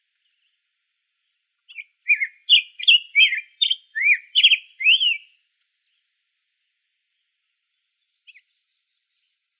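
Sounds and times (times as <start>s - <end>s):
black-headed grosbeak song in Arizona: 1.7s - 5.4s, 8.1s - 9.3s.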